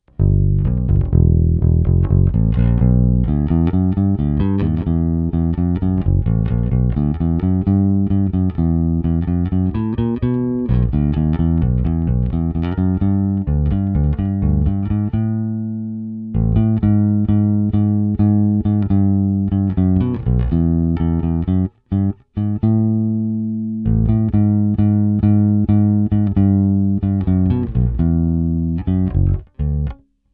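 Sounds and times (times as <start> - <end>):
Precision bass with rosewood fingerboard, open tone, La Bella Deep Talkin flatwound strings: 0.0 - 30.3.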